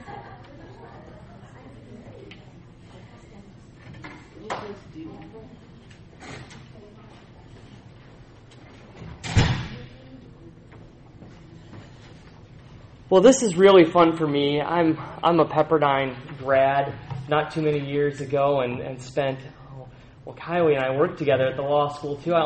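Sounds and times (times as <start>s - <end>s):
faint murmuring voices in the room: 0.0s - 13.1s
door shutting with a sharp loud thud: 9.1s - 9.9s
speech: 13.1s - 19.6s, 20.2s - 22.4s.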